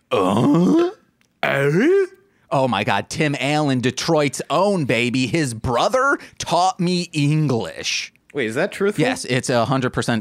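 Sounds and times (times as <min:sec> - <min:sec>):
loud drawn-out burp: 0:00.0 - 0:02.1
speech: 0:01.7 - 0:10.1.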